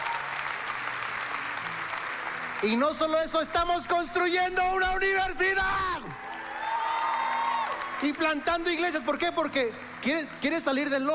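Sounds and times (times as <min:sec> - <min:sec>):
church congregation applauding: 0:00.0 - 0:11.1
speech: 0:02.6 - 0:06.3, 0:08.0 - 0:11.1.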